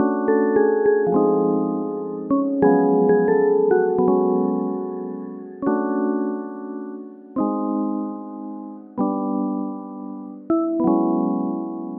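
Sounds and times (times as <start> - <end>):
melody: 0.0 - 11.6.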